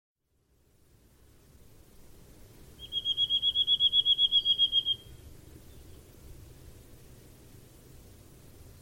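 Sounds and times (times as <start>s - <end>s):
bird trilling: 2.8s - 5.9s.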